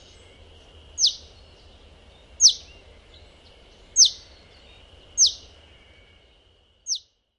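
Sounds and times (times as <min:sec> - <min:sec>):
russet sparrow Passer rutilans rutilans giving shrill calls in Japan: 0:01.0 - 0:01.3, 0:02.4 - 0:02.7, 0:04.0 - 0:04.3, 0:05.2 - 0:05.4.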